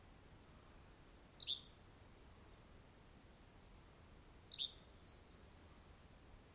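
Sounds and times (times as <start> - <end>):
Yellow-bellied flycatcher Empidonax flaviventris song: 0.0 - 2.8, 4.5 - 6.5
quiet steady background noise: 0.0 - 6.5.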